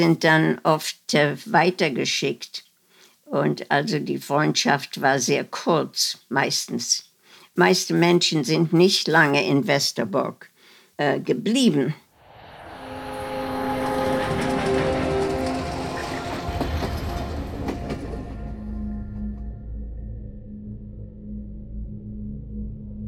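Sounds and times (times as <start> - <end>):
speech: 0.0 - 2.6, 3.3 - 12.0
train rolling along railway tracks in a loud steady rumble: 12.6 - 19.1.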